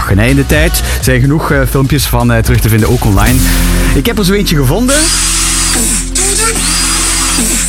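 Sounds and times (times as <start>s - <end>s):
speech: 0.1s - 5.9s, 7.4s - 7.6s
electric drill whining in dubstep-like rhythmic swoops: 4.9s - 7.6s.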